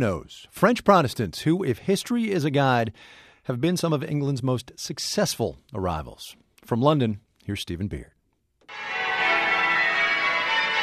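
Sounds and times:
speech: 0.0s - 9.0s
church bells of Spitalfields in East London ringing: 8.7s - 10.8s.

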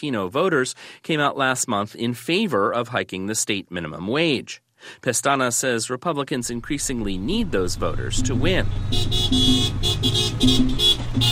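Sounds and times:
speech: 0.0s - 11.3s
car engines rumbling in a 60-car caravan driving through a Puerto Rican neighborhood in Orlando: 6.4s - 11.3s
car horns honking in a 60-car caravan: 8.2s - 11.3s.

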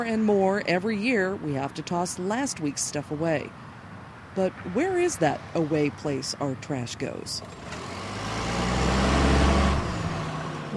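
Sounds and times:
speech: 0.0s - 3.7s, 4.4s - 7.9s
garbage truck rumbling: 7.4s - 10.7s.

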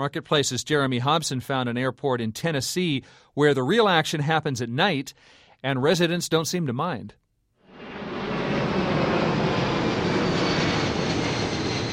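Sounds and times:
speech: 0.0s - 7.2s
low-flying aircraft passing over a leafy residential neighborhood in Memphis: 7.7s - 11.9s.

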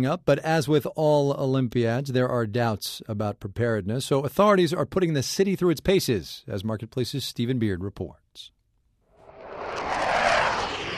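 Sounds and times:
speech: 0.0s - 8.6s
fighter jet flying over London: 9.2s - 10.9s.

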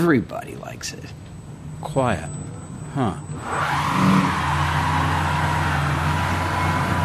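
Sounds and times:
speech: 0.0s - 4.5s
tire and road noise, tires spinning: 0.0s - 7.0s
electric car motor whine accelerating hard: 2.5s - 7.0s.

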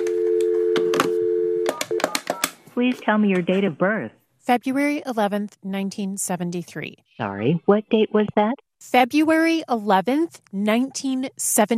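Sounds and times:
steady telephone tone: 0.0s - 2.5s
speech: 2.8s - 11.7s.

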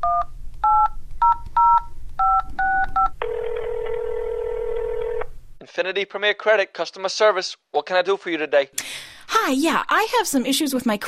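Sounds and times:
steady electronic telephone ringing tone: 0.0s - 5.3s
speech: 5.8s - 11.0s.

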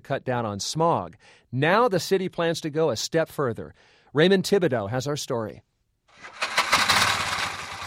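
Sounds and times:
speech: 0.0s - 6.4s
motorized three-wheeled rickshaw taxi engine running on compressed natural gas in New Delhi: 6.2s - 7.8s.

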